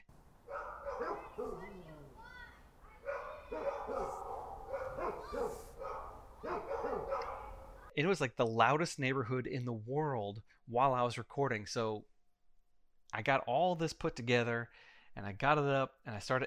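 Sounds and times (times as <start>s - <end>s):
dog barking and yelping: 0.4s - 2.2s, 3.0s - 7.9s
speech: 8.0s - 12.1s, 13.1s - 16.4s.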